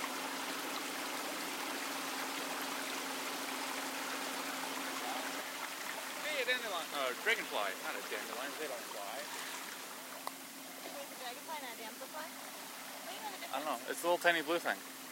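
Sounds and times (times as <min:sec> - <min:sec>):
water rushing around a pontoon boat on a river: 0:00.0 - 0:15.1
people chatting casually: 0:06.2 - 0:09.3, 0:10.9 - 0:12.3, 0:13.1 - 0:14.8
speech: 0:06.5 - 0:09.5, 0:13.5 - 0:14.9.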